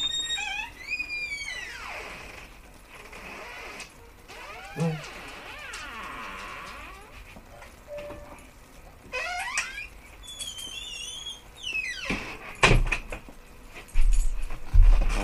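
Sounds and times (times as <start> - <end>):
door squeaking and creaking open: 0.0 - 8.4, 9.0 - 13.0
speech: 4.8 - 5.2
low bumps and shuffling as a dog is let in: 13.8 - 15.2.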